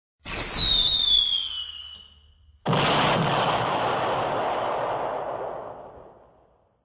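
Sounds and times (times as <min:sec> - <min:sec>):
cartoon firework: 0:00.2 - 0:06.8
cartoon explosion: 0:02.7 - 0:06.2.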